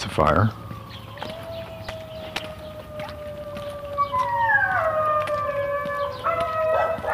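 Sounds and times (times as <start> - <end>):
steady wailing siren: 0.0 - 7.1
speech: 0.2 - 0.6
dog howling: 1.1 - 7.1.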